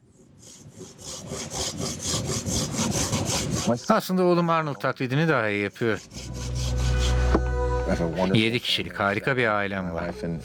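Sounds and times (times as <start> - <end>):
hand saw cutting wood: 0.4 - 3.9, 5.8 - 8.1
speech: 3.7 - 6.2, 7.9 - 10.4.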